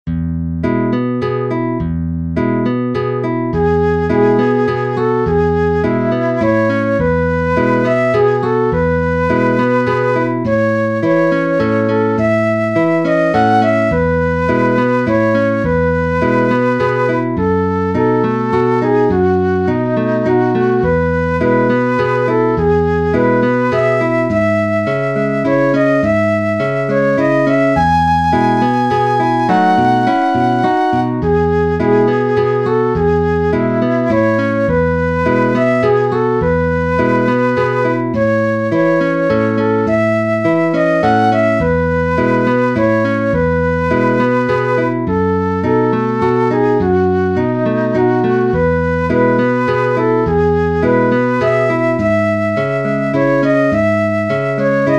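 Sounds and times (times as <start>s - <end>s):
flute and guitar duet in E major: 0.2s - 54.9s.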